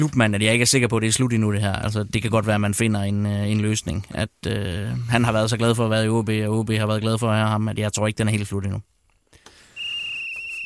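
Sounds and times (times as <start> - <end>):
speech: 0.0 - 8.9
faint hiss: 0.0 - 10.6
long steady shrill whistle blast: 9.7 - 10.6.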